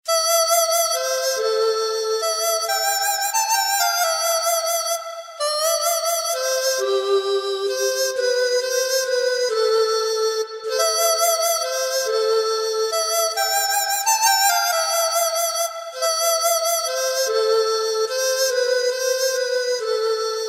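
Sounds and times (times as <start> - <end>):
Irish dizi flute: 0.0 - 20.4.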